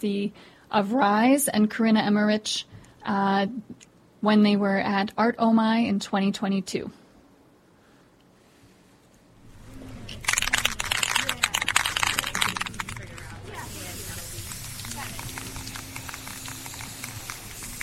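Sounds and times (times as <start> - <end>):
speech: 0.0 - 7.0
spray paint hissing onto a cardboard sign: 10.3 - 17.8.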